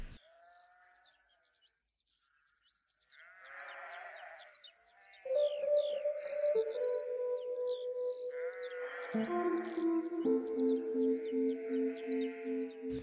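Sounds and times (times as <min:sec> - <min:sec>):
sheep bleating: 0:00.0 - 0:01.2, 0:03.1 - 0:05.3, 0:08.2 - 0:13.0
simple slow piano melody of sustained notes: 0:05.3 - 0:13.0.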